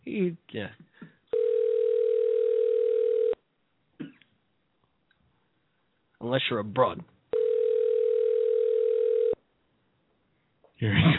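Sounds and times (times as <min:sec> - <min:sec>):
speech: 0:00.2 - 0:00.9, 0:06.2 - 0:07.1, 0:10.8 - 0:11.1
steady loud telephone line tone during call: 0:01.3 - 0:03.4, 0:07.3 - 0:09.4.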